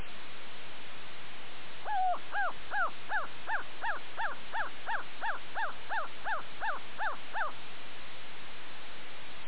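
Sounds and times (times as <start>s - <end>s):
crow barking: 1.9s - 7.6s.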